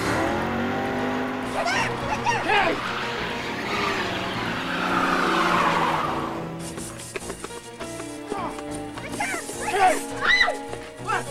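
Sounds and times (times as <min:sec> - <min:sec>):
car engine revving: 0:00.0 - 0:08.2
motor sounds: 0:00.0 - 0:08.2
tires squealing through a handbrake turn: 0:00.0 - 0:11.2.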